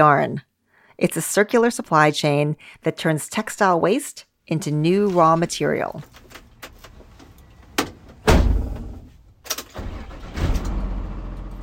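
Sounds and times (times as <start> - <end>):
speech: 0.0 - 6.3
door-like thuds: 7.8 - 9.1.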